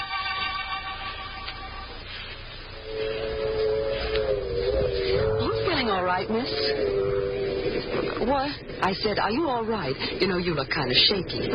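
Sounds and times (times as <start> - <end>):
high metallic ringing tones: 0.0 - 8.7
train pulling out of a station, mechanical whine and rumble: 0.0 - 11.5
speech: 6.0 - 7.0, 7.9 - 11.5.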